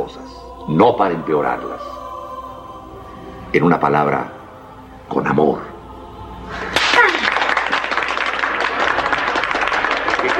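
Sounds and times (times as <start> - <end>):
speech: 0.1 - 2.0, 3.5 - 4.4, 5.1 - 5.7
class of students applauding: 6.7 - 10.3.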